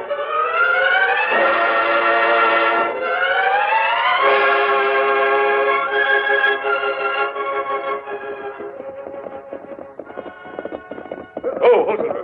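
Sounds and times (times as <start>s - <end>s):
sustained musical backing: 0.0s - 12.2s
horses' hooves clip-clopping in a trotting rhythm while riding: 7.0s - 12.2s.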